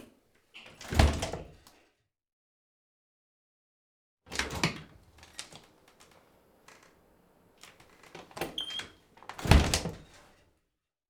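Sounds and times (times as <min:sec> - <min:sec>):
wooden glazed studio door opening and closing: 0:00.7 - 0:01.5, 0:04.4 - 0:10.3.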